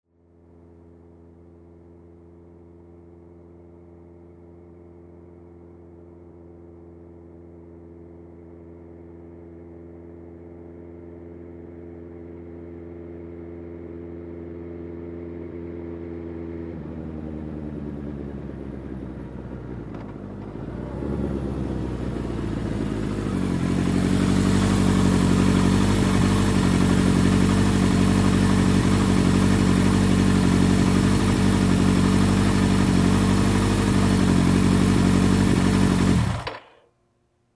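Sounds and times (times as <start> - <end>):
motorcycle approaching and turning off: 9.9 - 36.8.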